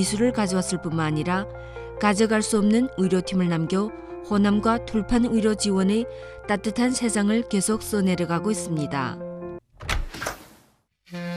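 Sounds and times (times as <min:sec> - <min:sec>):
speech: 0:00.0 - 0:09.3
window being opened at home: 0:09.8 - 0:10.7.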